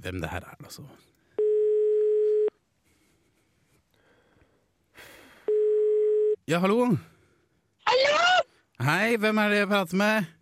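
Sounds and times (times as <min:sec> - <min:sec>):
speech: 0:00.0 - 0:01.2, 0:06.5 - 0:07.1, 0:07.9 - 0:10.4
telephone ringing tone while a call is being placed: 0:01.4 - 0:02.5, 0:05.5 - 0:06.4.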